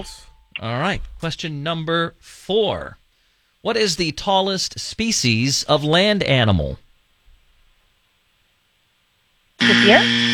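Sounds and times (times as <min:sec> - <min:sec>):
speech: 0:00.0 - 0:03.0, 0:03.6 - 0:06.8, 0:09.6 - 0:10.3
quiz game buzzer with harsh electronic buzz: 0:09.6 - 0:10.3.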